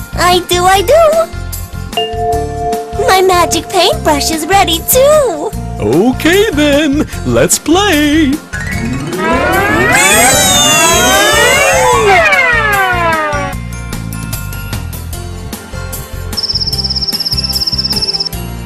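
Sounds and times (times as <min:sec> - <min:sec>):
speech: 0:00.2 - 0:01.4, 0:02.0 - 0:10.6
loud wailing siren: 0:08.8 - 0:13.6
cricket trill chirping: 0:16.4 - 0:18.4.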